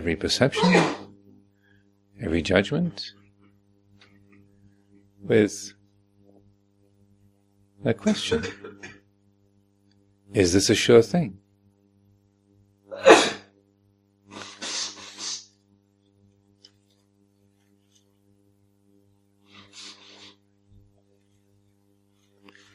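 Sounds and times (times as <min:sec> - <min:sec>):
speech: 0:00.0 - 0:01.0, 0:02.2 - 0:03.2, 0:05.2 - 0:05.8, 0:07.8 - 0:09.0, 0:10.3 - 0:11.4
low steady hum: 0:00.0 - 0:22.7
sharp loud sneeze: 0:00.6 - 0:01.1, 0:12.9 - 0:13.5, 0:14.3 - 0:15.5
breathy sniffle or exhale: 0:14.3 - 0:15.6, 0:19.5 - 0:20.4.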